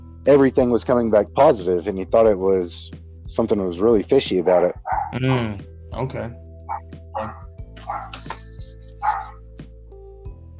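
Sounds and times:
speech: 0:00.2 - 0:06.4, 0:07.2 - 0:07.4
dog barking: 0:04.4 - 0:05.2, 0:06.7 - 0:08.4, 0:09.0 - 0:09.4.

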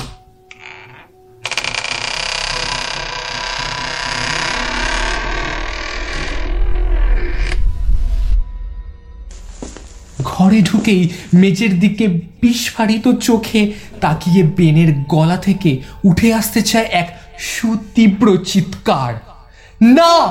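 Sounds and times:
door creaking open: 0:00.0 - 0:07.7
speech: 0:10.5 - 0:20.2.

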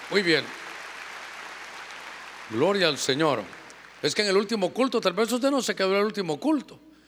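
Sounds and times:
audience clapping loudly: 0:00.0 - 0:04.0
speech: 0:00.1 - 0:00.6, 0:02.5 - 0:06.8.

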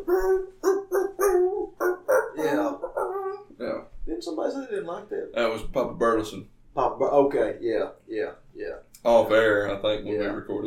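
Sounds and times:
dogs barking a Christmas tune: 0:00.0 - 0:03.3
speech: 0:04.5 - 0:08.4, 0:09.0 - 0:10.6.

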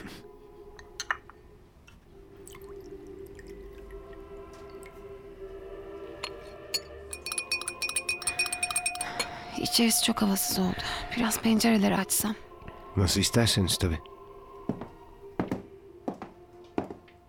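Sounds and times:
spoon clinking against a glass of tea with two sugars: 0:06.2 - 0:09.6
speech: 0:09.6 - 0:14.1.

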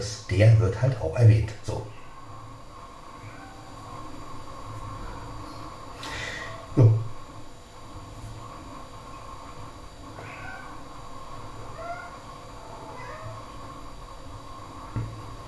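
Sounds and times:
speech: 0:00.0 - 0:01.9
steady low hum: 0:00.0 - 0:15.4
tomcat meowing loudly: 0:11.7 - 0:12.2.

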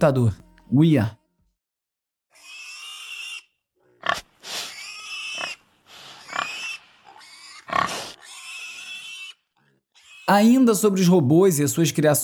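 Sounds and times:
speech: 0:00.0 - 0:01.2, 0:10.3 - 0:12.2
pig grunting and oinking: 0:02.3 - 0:10.5.

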